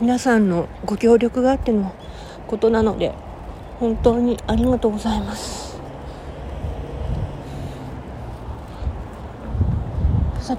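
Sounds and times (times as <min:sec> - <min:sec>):
speech: 0:00.0 - 0:05.7
car passing by outdoors: 0:05.1 - 0:10.5.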